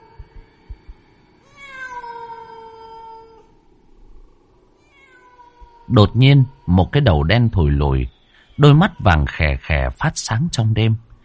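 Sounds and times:
soft low thumps: 0.0 - 1.1
cat meowing mournfully in a deserted graveyard at night: 1.4 - 3.6, 4.8 - 7.3, 8.0 - 9.5
speech: 5.9 - 11.1.

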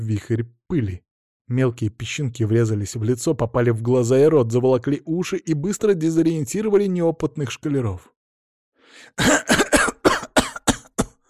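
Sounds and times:
speech: 0.0 - 8.2, 8.9 - 9.6
man coughing to clear his throat: 9.2 - 11.2.

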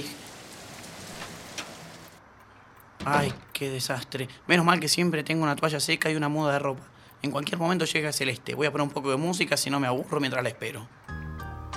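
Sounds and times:
rain pouring: 0.0 - 2.2
speech: 3.0 - 11.0.

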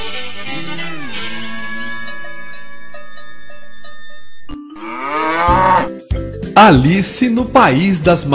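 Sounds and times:
cow mooing: 0.5 - 3.8, 4.7 - 6.0
speech: 6.6 - 8.3.

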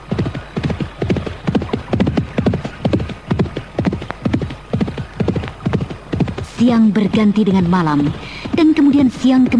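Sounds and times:
horse hooves clip-clopping at a walk along a riverbank: 0.0 - 9.5
speech: 6.6 - 9.5.

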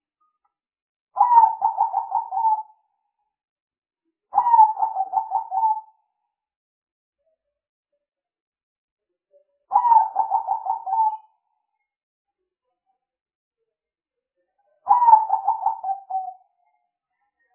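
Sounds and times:
spotted dove cooing as a lure for trapping birds: 1.2 - 2.7, 4.4 - 5.9, 9.7 - 11.2, 14.9 - 16.3.

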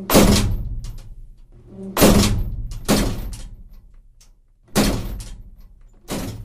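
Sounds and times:
rooftop shed door slamming in strong wind: 0.0 - 1.1, 1.7 - 3.7, 4.7 - 6.4.

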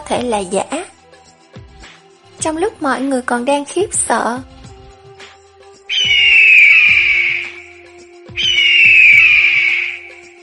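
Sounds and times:
speech: 0.1 - 0.9, 2.4 - 4.5
shrill cries of a fat bird from afar: 5.9 - 10.4.

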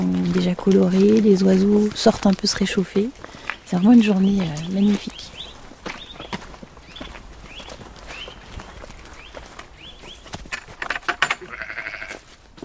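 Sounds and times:
speech: 0.4 - 5.4
ewe bleating outdoors on a frosty sunny day: 11.4 - 12.2.

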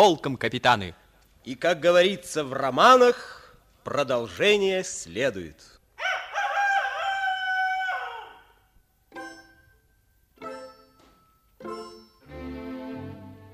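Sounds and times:
speech: 0.0 - 5.8
rooster crowing: 6.0 - 8.6.

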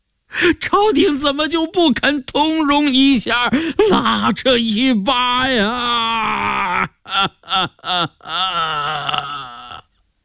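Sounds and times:
speech: 0.4 - 9.3
man wailing and crying loudly in grief: 3.4 - 9.9.

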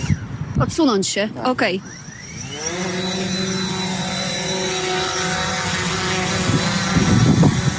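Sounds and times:
speech: 0.6 - 3.0
drone flying under an operator's control: 1.6 - 7.7.

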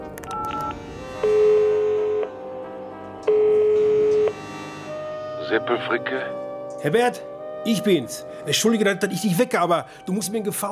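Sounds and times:
telephone tones while calling a directory information number: 0.2 - 2.4, 3.3 - 4.4
speech: 5.5 - 10.7.

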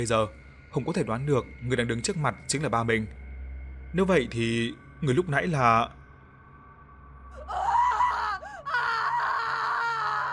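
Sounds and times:
speech: 0.0 - 3.2, 3.9 - 6.0
woman's piercing scream from a room: 7.4 - 10.3.

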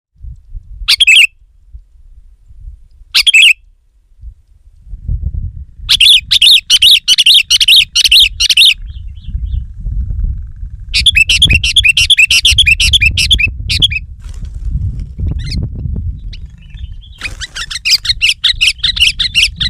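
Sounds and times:
sooty-headed bulbul singing: 0.9 - 1.4, 3.2 - 3.6, 5.9 - 9.6, 10.9 - 14.0, 15.3 - 19.6.

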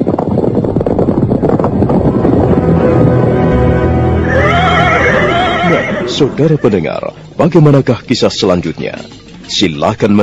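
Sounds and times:
loud continuous rushing noise: 0.0 - 7.4
horse neighing as riders ride away from a palace: 4.2 - 7.0
speech: 6.2 - 10.2.

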